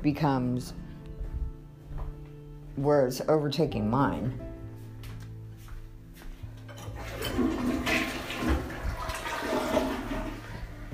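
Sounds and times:
speech: 0.0 - 0.8, 2.8 - 4.5
toilet flushing with gurgling drain: 6.7 - 10.9.

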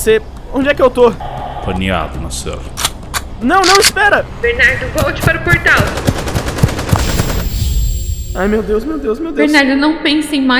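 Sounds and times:
speech: 0.0 - 2.8, 3.4 - 6.3, 8.4 - 10.5
gunshots: 5.0 - 8.0.

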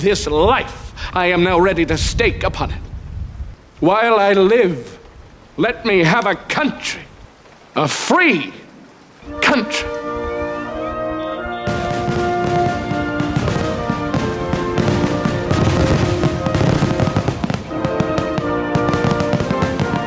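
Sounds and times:
speech: 0.0 - 2.9, 3.8 - 5.0, 5.6 - 7.1, 7.8 - 8.6, 9.3 - 10.0
sustained musical tones: 9.2 - 20.0
fireworks bursting and crackling: 9.3 - 20.0.

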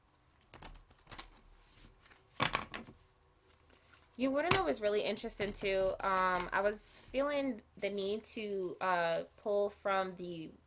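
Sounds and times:
deck of tarot cards being shuffled: 0.4 - 7.2
speech: 4.2 - 10.6.

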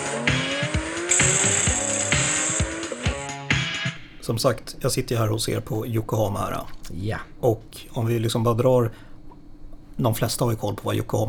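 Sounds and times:
electric race car whining around a track: 0.0 - 3.4
speech: 4.3 - 9.1, 10.0 - 11.2.

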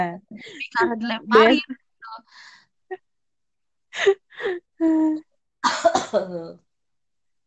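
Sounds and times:
speech: 0.0 - 3.0, 4.0 - 6.6
rough coughs: 5.6 - 6.4
person clearing throat: 5.6 - 6.5.

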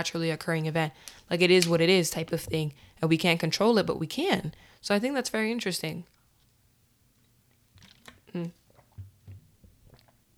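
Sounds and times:
speech: 0.0 - 6.2, 8.3 - 8.6
soft low gulping swallows of water: 7.8 - 10.2.

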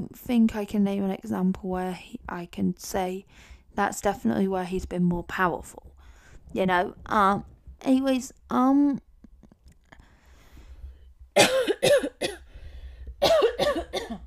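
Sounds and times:
speech: 0.1 - 5.9, 6.5 - 9.1
person coughing away from the microphone: 11.4 - 12.5, 13.2 - 14.2.

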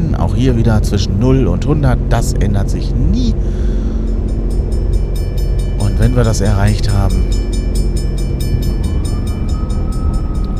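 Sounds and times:
speech: 0.4 - 3.6, 6.0 - 7.4
thin whine: 1.4 - 10.5
landed airplane braking hard in flight game audio: 3.3 - 10.5.

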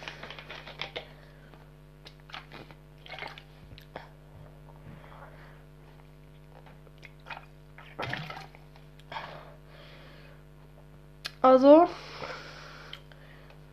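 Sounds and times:
person drinking water with gulps and swallows: 0.0 - 9.6
speech: 11.5 - 12.0.

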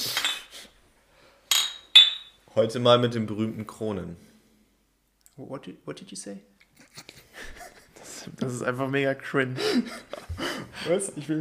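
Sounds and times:
glasses clinking in a toast: 1.5 - 2.4
speech: 2.6 - 4.3, 5.4 - 7.1, 8.3 - 11.3
laughter: 6.8 - 8.2.

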